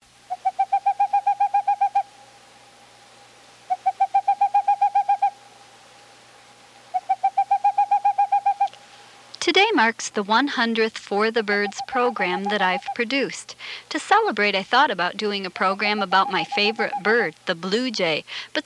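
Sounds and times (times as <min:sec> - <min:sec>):
faint steady hum: 0:00.0 - 0:18.6
Boreal owl song: 0:00.3 - 0:02.2, 0:03.6 - 0:05.4, 0:06.9 - 0:08.8, 0:11.6 - 0:13.1, 0:16.2 - 0:17.2
speech: 0:09.5 - 0:18.6.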